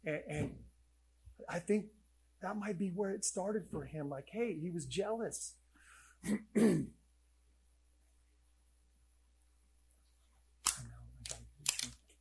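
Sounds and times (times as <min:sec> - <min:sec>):
speech: 0:00.0 - 0:00.6, 0:01.5 - 0:05.6, 0:06.2 - 0:07.0
person clearing throat: 0:06.2 - 0:07.0
person coughing sharply: 0:06.2 - 0:07.0.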